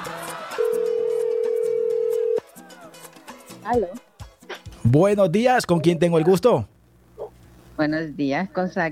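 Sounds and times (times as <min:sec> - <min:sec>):
telephone dialing and ringing tone: 0:00.6 - 0:02.5
speech: 0:03.7 - 0:04.0, 0:04.9 - 0:06.7, 0:07.8 - 0:08.8.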